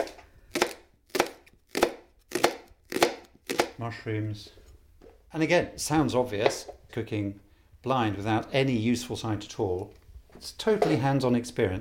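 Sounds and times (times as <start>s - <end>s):
knife chopping a leek on a board: 0.0s - 3.8s
speech: 3.8s - 4.6s, 5.3s - 11.7s.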